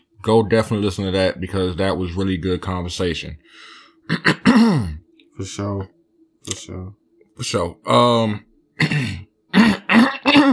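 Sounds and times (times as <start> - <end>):
speech: 0.2 - 9.1
person clearing throat and coughing: 4.1 - 5.0, 8.8 - 10.5.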